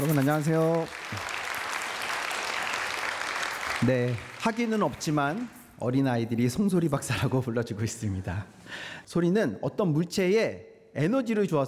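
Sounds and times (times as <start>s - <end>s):
speech: 0.0s - 1.4s, 3.8s - 11.6s
audience applause welcoming a presenter: 0.0s - 5.7s.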